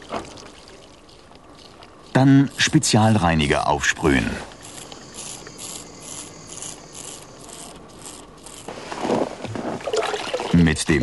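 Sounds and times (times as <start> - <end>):
cold water splashing on a roof: 0.0 - 1.1, 9.7 - 10.7
cold water trickling on a roof: 0.0 - 3.1, 9.8 - 10.8
speech: 2.2 - 4.5, 10.7 - 11.0.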